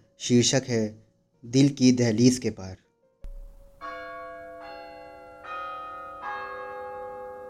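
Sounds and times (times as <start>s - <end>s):
speech: 0.2s - 2.8s
distant clock tower bell chiming: 3.7s - 7.4s.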